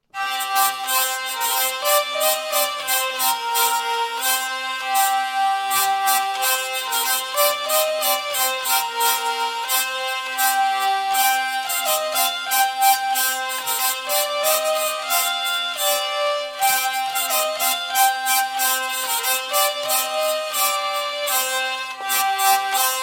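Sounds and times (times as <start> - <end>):
hurdy-gurdy lament: 0.2 - 23.0.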